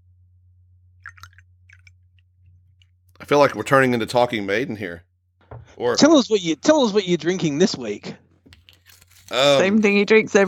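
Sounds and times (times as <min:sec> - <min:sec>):
cinnamon whiskey pouring into a glass: 0:01.0 - 0:01.8
faint drips: 0:01.0 - 0:02.0
speech: 0:03.2 - 0:05.1, 0:05.8 - 0:08.2, 0:09.3 - 0:10.4.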